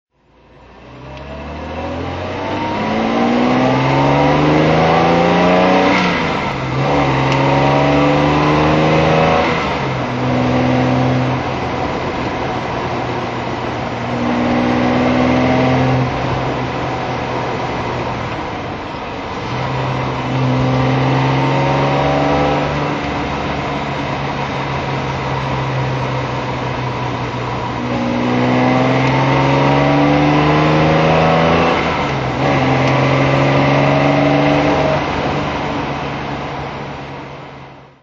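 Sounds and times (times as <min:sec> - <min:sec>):
Jaguar E-Type 3.8 FHC engine driving: 0:00.1 - 0:38.0.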